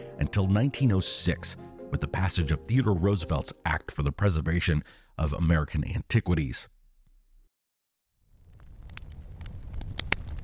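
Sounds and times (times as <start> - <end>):
speech: 0.2 - 6.8
crackling fire in a fire pit: 8.2 - 10.4.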